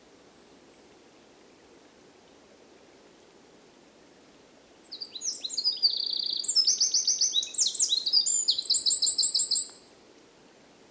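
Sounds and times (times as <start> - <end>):
faint low background hiss: 0.0 - 10.8
Eurasian wren Troglodytes troglodytes singing: 4.9 - 9.8.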